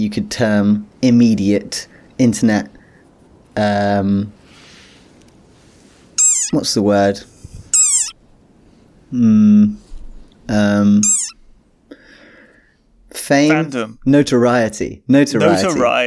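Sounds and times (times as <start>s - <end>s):
speech: 0.0s - 2.8s, 3.6s - 4.4s, 6.5s - 7.3s, 9.1s - 9.8s, 10.5s - 11.2s, 13.2s - 16.0s
frog's funny squeaky call: 6.2s - 6.7s, 7.7s - 8.2s, 11.0s - 11.5s.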